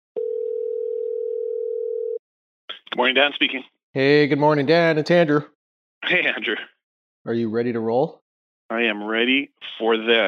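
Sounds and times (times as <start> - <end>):
telephone dial tone on a landline call: 0.2 - 2.2
speech: 2.9 - 10.2.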